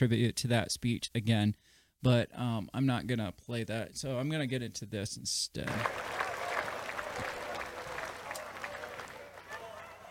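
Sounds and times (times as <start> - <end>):
speech: 0.0 - 6.2
audience applause: 5.7 - 10.0.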